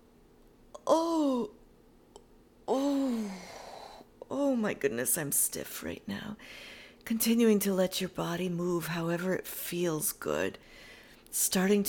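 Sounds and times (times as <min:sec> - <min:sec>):
person yawning during a stretch: 0:00.8 - 0:01.6, 0:02.7 - 0:04.1
speech: 0:04.6 - 0:11.8.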